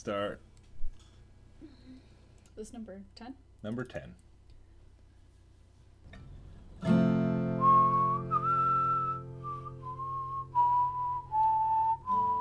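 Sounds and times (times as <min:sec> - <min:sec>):
speech: 0:00.0 - 0:00.5, 0:02.6 - 0:04.3
person whistling a wavering breathy tune: 0:07.6 - 0:12.3.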